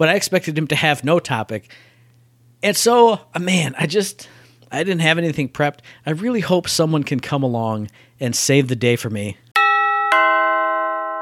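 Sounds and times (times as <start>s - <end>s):
speech: 0.0s - 1.9s, 2.6s - 9.4s
two-note doorbell chime: 9.6s - 11.2s.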